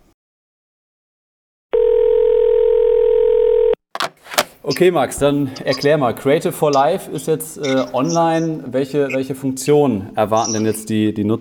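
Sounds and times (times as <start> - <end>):
telephone dial tone while placing a call: 1.8 - 4.5
sharp clicks: 4.0 - 4.9
speech: 4.7 - 11.3.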